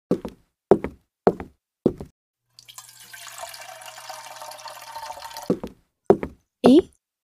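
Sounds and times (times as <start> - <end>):
water poured into a glass for a drink: 2.5 - 5.6
speech: 6.6 - 7.0.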